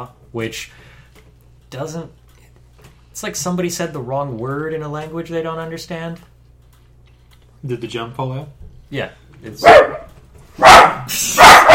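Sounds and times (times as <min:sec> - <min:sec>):
speech: 0:00.0 - 0:00.9, 0:01.7 - 0:02.2, 0:03.2 - 0:06.3, 0:07.6 - 0:10.0
puppy barking: 0:09.6 - 0:11.7.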